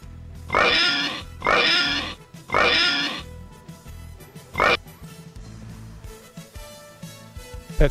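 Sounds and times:
pig oinking: 0:00.5 - 0:03.3, 0:04.6 - 0:04.8.

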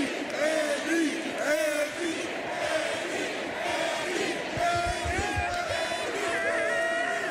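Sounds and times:
large crowd chanting and yelling at a victory rally: 0:00.0 - 0:07.2.

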